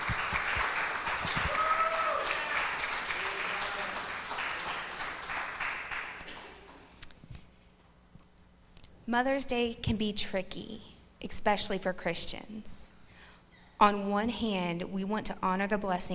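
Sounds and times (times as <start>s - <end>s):
crowd applauding: 0.0s - 6.9s
speech: 9.1s - 12.9s, 13.8s - 16.1s.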